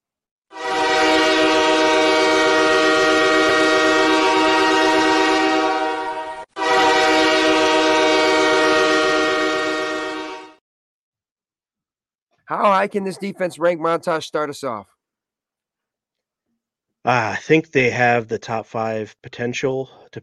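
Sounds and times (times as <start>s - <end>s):
loud sustained train horn: 0.5s - 10.6s
low rumbling rail noise of a rolling train: 0.6s - 10.5s
speech: 12.5s - 15.0s, 17.0s - 20.2s.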